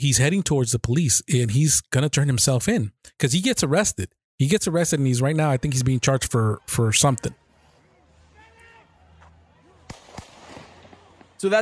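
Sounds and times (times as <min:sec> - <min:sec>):
speech: 0:00.0 - 0:07.4, 0:11.4 - 0:11.6
gunshots in background of played video: 0:09.8 - 0:11.4.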